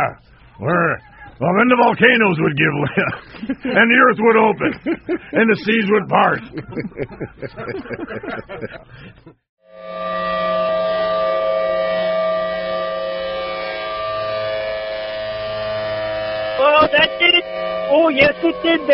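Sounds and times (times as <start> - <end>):
speech: 0.0 - 10.5, 16.6 - 18.9
laughter: 2.7 - 9.4
civil defense siren wailing with strong harmonic tones: 9.6 - 18.9.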